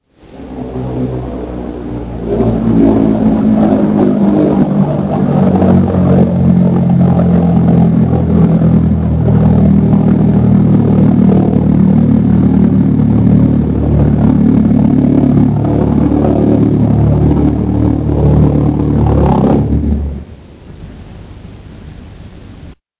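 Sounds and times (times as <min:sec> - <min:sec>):
V1 rocket: 0:00.0 - 0:20.5.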